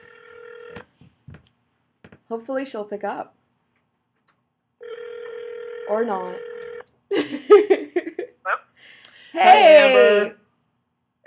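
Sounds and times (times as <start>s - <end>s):
steady electronic phone dial tone: 0.0s - 0.9s, 4.8s - 6.9s
speech: 2.3s - 3.4s, 5.9s - 6.5s, 9.4s - 10.4s.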